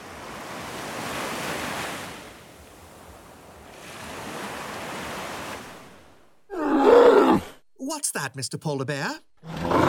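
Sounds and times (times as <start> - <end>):
ocean waves: 0.0 - 6.5
speech: 8.0 - 9.8.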